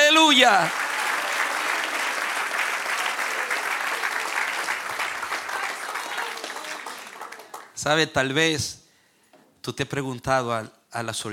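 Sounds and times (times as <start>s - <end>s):
crowd applauding: 0.0s - 7.8s
speech: 0.1s - 0.8s, 7.8s - 8.8s, 9.6s - 11.3s.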